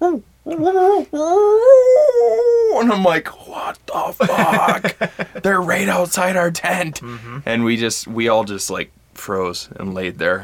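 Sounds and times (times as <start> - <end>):
person imitating a coyote howl: 0.0 - 2.9
speech: 0.1 - 1.6, 2.8 - 10.4
laughter: 4.2 - 5.7.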